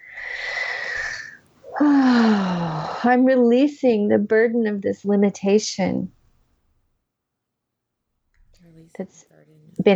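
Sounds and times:
deep breath with voiced sigh on the exhale: 0.0s - 3.1s
speech: 3.0s - 6.2s, 8.9s - 9.9s.

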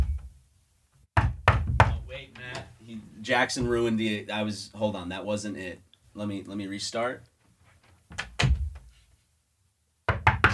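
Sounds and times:
knocking on a door: 1.2s - 2.1s, 10.1s - 10.5s
speech: 2.2s - 7.3s.

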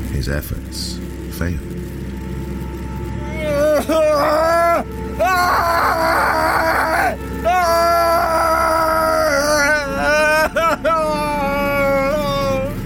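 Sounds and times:
speech: 0.2s - 1.9s, 3.8s - 6.3s
man wailing and crying out in pain: 3.2s - 12.8s.

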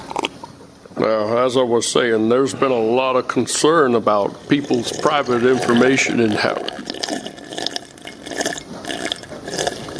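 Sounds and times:
speech: 1.0s - 7.3s
person gulping water: 4.2s - 9.9s.

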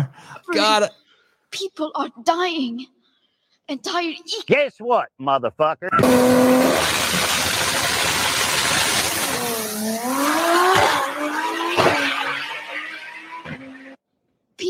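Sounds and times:
speech: 0.5s - 3.0s, 3.7s - 7.0s
car engine revving: 6.0s - 14.0s
car tires squealing: 6.0s - 14.0s.

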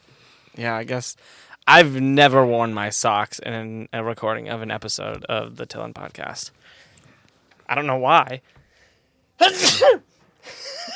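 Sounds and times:
speech: 0.6s - 6.8s, 7.7s - 8.6s, 9.4s - 10.9s
loud sneeze: 9.4s - 10.1s.

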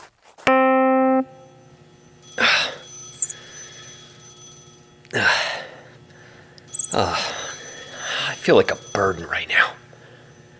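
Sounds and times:
telephone ringing: 1.4s - 10.5s
short high chirp: 2.9s - 4.2s, 6.7s - 8.4s
speech: 7.0s - 7.4s, 8.4s - 9.7s.

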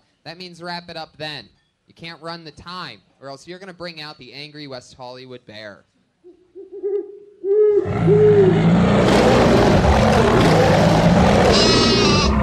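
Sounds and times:
speech: 0.2s - 5.9s, 7.9s - 8.6s
owl hooting: 6.2s - 8.7s, 11.4s - 12.4s
loud dense roar of noise: 7.8s - 12.4s.

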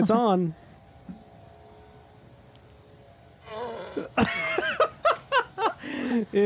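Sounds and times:
speech: 0.0s - 0.6s, 6.1s - 6.4s
man farting loudly: 3.4s - 4.8s
laughter: 4.0s - 6.2s.

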